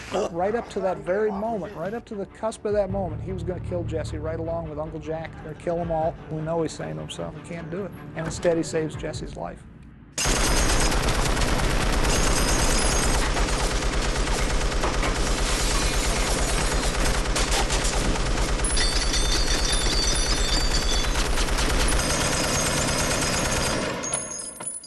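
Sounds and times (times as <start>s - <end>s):
speech: 0.1s - 9.7s
loud sustained automatic gunfire: 10.2s - 24.2s.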